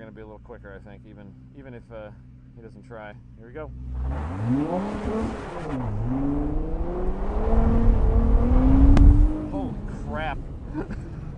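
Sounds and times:
rough rumble of tire noise on ice: 0:00.0 - 0:11.3
speech: 0:00.2 - 0:08.7, 0:09.7 - 0:11.1
car engine accelerating hard on ice: 0:01.2 - 0:11.3.

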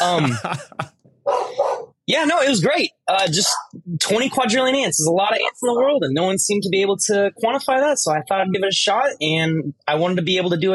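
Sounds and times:
laughter: 0:00.0 - 0:01.0
speech: 0:00.0 - 0:01.4, 0:02.1 - 0:10.7
dog barking excitedly: 0:01.2 - 0:02.0, 0:03.5 - 0:03.8.

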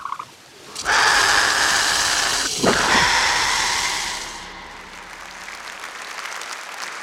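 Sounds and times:
angry swan hissing harshly: 0:00.6 - 0:06.1.

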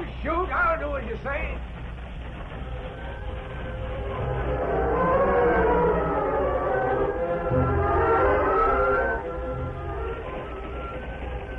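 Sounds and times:
train rumbling: 0:00.0 - 0:11.5
speech: 0:01.0 - 0:01.8
long wavering whistle-like wail: 0:04.0 - 0:11.5.

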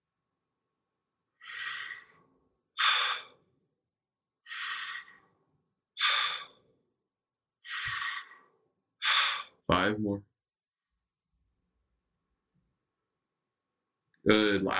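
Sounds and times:
deep breathing during a guided breathing exercise: 0:01.4 - 0:03.5, 0:04.4 - 0:05.4, 0:06.0 - 0:06.7, 0:07.6 - 0:09.6
speech: 0:09.7 - 0:10.3, 0:14.3 - 0:14.7.

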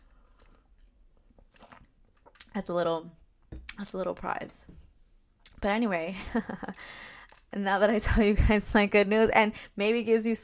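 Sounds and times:
sipping and slurping a mocktail: 0:01.4 - 0:02.5
speech: 0:02.6 - 0:03.2, 0:03.8 - 0:04.8, 0:05.6 - 0:10.4.

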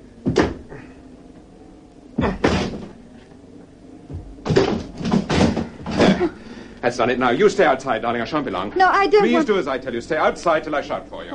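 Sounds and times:
door being forced open with heavy thuds and rattles: 0:04.1 - 0:06.3
speech: 0:06.9 - 0:11.3.

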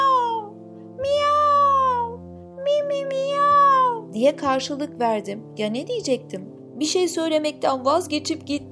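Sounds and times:
person imitating a cat's meow: 0:00.0 - 0:04.1
speech: 0:04.2 - 0:08.6.

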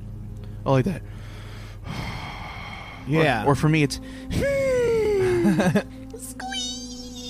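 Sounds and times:
person imitating heavy angry breathing: 0:00.4 - 0:03.4, 0:04.0 - 0:05.5
speech: 0:00.6 - 0:01.2, 0:03.1 - 0:04.8, 0:05.4 - 0:06.0
laughter: 0:04.5 - 0:05.9.

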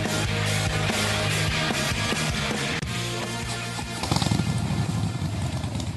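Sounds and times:
Harley-Davidson motorcycle engine idling and revving: 0:00.0 - 0:05.9.

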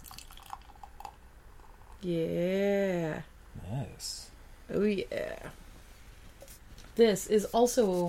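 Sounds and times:
unfiltered pilsner beer pouring into a glass: 0:00.0 - 0:02.0
speech: 0:02.0 - 0:05.6, 0:07.0 - 0:08.0.

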